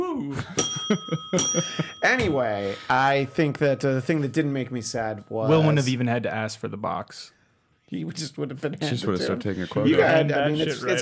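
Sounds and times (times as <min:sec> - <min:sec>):
speech: 0:00.2 - 0:11.0
single bright bell ding: 0:00.5 - 0:05.8.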